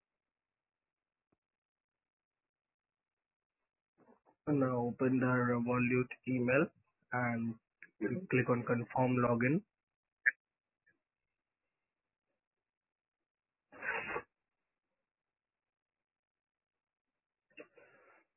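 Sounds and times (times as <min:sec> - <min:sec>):
speech: 0:04.4 - 0:09.7
person sneezing: 0:13.8 - 0:14.2.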